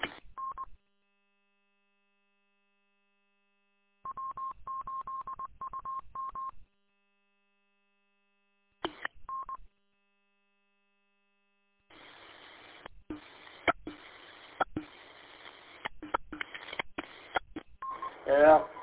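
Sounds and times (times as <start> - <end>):
faint steady hum: 0.0 - 18.8
DTMF touch-tone dialing sent over a radio link: 0.4 - 0.7, 4.1 - 6.6, 9.3 - 9.6, 17.8 - 18.8.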